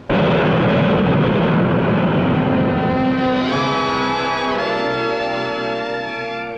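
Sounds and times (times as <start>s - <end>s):
jet airliner engines roaring during climb: 0.0s - 6.5s
jet engine turbine whine: 0.0s - 6.5s.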